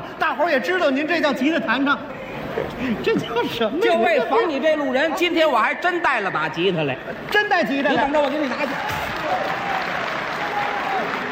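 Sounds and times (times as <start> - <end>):
speech: 0.3 - 9.7
audience applauding at a live stage performance: 8.2 - 11.3.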